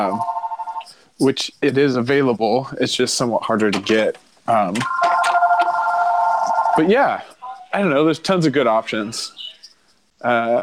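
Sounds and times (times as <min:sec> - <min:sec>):
speech: 0:00.0 - 0:00.4, 0:01.2 - 0:05.0, 0:06.8 - 0:09.5, 0:10.2 - 0:10.6
telephone ringing with an electronic warbling tone: 0:00.0 - 0:00.9, 0:04.8 - 0:07.6.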